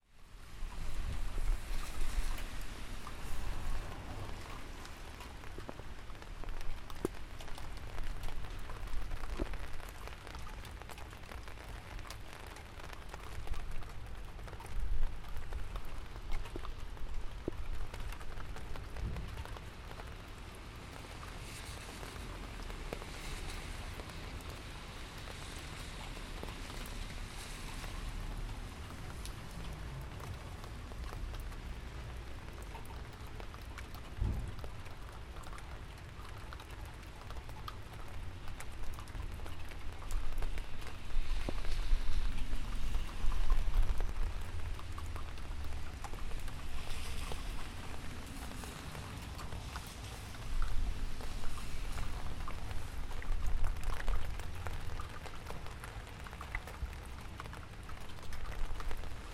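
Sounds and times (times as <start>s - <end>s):
rain on windowsill: 0.0s - 59.3s.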